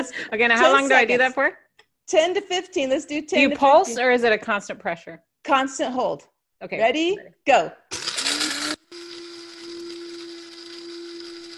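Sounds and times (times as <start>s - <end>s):
speech: 0.0s - 8.1s
electric coffee grinder motor whirring: 7.9s - 11.5s.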